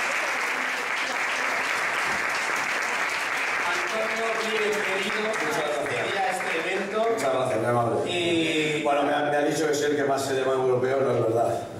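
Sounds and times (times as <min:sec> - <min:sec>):
crowd applauding: 0:00.0 - 0:07.5
speech: 0:07.0 - 0:11.7.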